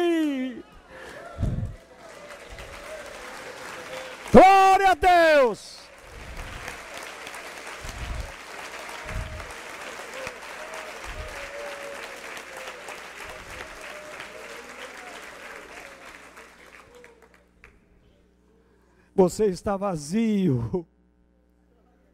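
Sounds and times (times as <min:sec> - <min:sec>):
standing audience applauding: 0:00.0 - 0:17.8
faint murmuring voices: 0:00.6 - 0:04.0, 0:07.8 - 0:17.3
low thumps: 0:01.4 - 0:01.8
speech: 0:04.3 - 0:05.8, 0:19.2 - 0:20.9.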